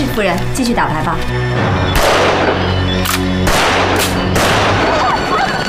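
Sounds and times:
speech: 0.2s - 4.5s
gunshots outside the window: 1.9s - 5.6s.

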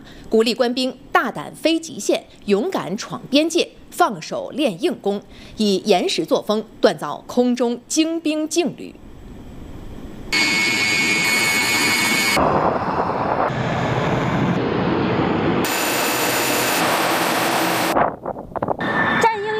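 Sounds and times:
speech: 0.3s - 9.0s
J-11B fighter jet engines roaring with a piercing high whine during tactical training: 10.3s - 18.0s, 18.8s - 19.3s.

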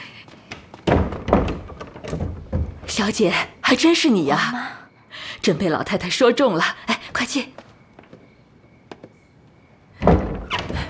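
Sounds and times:
door being opened for a visitor: 0.4s - 3.3s, 10.0s - 10.8s
speech: 3.0s - 4.8s, 5.4s - 7.6s.

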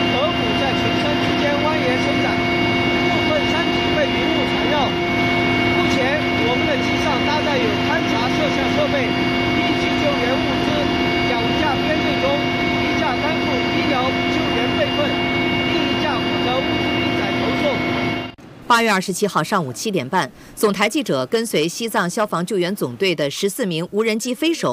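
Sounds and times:
person speaking: 0.0s - 18.0s, 18.6s - 24.7s
helicopter engine drone inside cabin: 0.0s - 18.5s.

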